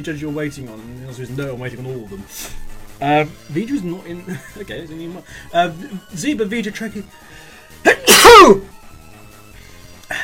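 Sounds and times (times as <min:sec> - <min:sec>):
speech: 0:00.0 - 0:08.8
loud sneeze: 0:07.9 - 0:08.6.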